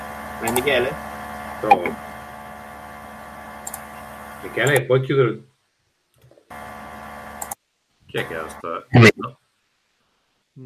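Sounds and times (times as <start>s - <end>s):
cooling fan whirring through an open microphone: 0.0s - 5.0s, 6.5s - 8.7s
speech: 0.4s - 2.1s, 4.4s - 5.5s, 8.1s - 9.4s
tiny clicks: 3.6s - 3.8s.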